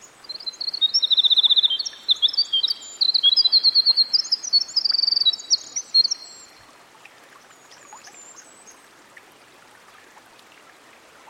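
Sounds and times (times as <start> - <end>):
winter wren singing by a stream: 0.0 - 6.6.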